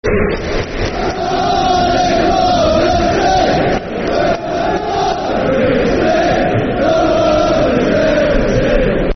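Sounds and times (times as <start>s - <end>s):
football crowd chanting: 0.2s - 9.1s.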